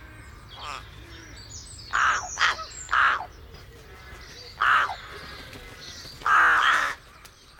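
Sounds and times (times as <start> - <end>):
higher strangled bird calls: 0.0 - 3.4, 4.1 - 7.5
rook cawing roughly: 0.5 - 3.3, 4.1 - 5.3, 6.2 - 7.1.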